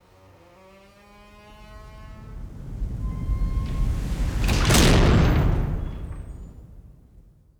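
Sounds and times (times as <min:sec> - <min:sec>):
large vault door: 0:01.3 - 0:07.3.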